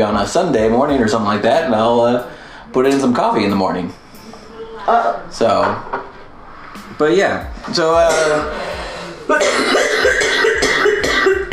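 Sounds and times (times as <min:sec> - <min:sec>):
speech: 0:00.0 - 0:04.0, 0:04.8 - 0:06.0, 0:06.9 - 0:08.6
person getting over an illness coughing harshly after a burning pipe hit: 0:08.0 - 0:08.6, 0:09.3 - 0:11.5.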